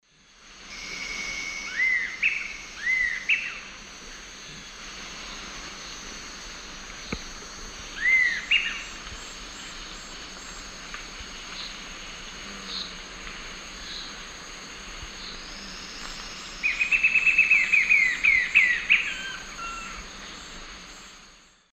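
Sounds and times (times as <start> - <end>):
Sirystes sibilator call in South American eastern lowlands: 0.7 - 3.6, 16.6 - 20.3
Sirystes sibilator song in South American eastern lowlands: 0.7 - 3.7, 8.0 - 9.0, 15.2 - 21.6.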